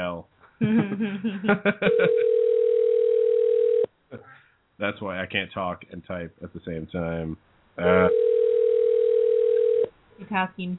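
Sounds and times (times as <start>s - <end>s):
speech: 0.0s - 2.5s, 4.8s - 8.3s, 10.2s - 10.7s
laughter: 0.6s - 2.3s
electronic telephone ringing: 1.9s - 3.9s, 8.1s - 9.9s.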